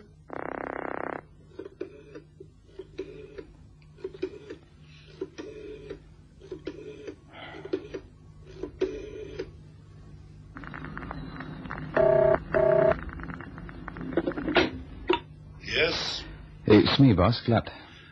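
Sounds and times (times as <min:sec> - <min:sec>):
low steady hum: 0:00.0 - 0:18.1
telephone dialing tones on a private line: 0:11.0 - 0:13.0
speech: 0:16.7 - 0:17.9.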